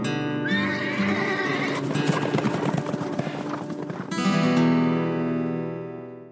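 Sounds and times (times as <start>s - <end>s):
horse whinnying: 0.4s - 3.8s
horse hooves clopping: 0.5s - 5.0s.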